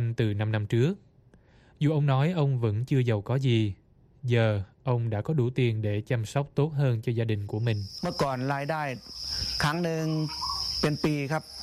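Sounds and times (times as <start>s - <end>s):
speech: 0.1s - 1.1s, 1.8s - 11.6s
farmed crickets chirping: 6.6s - 11.6s.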